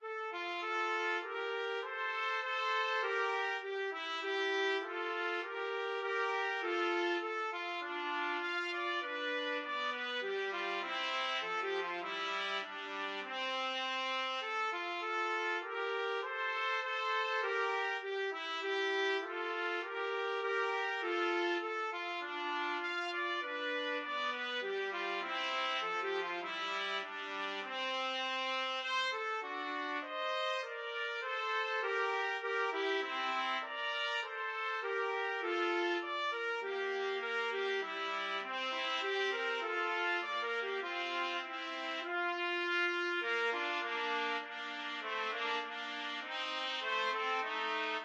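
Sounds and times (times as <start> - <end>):
trumpet duet playing a minuet: 0.0 - 48.0.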